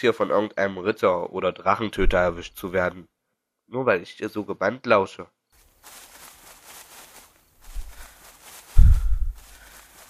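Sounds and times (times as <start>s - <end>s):
speech: 0.0s - 3.1s, 3.7s - 6.0s
heavy footsteps thudding: 2.0s - 2.4s, 7.6s - 9.6s
faint rustling: 5.6s - 10.0s.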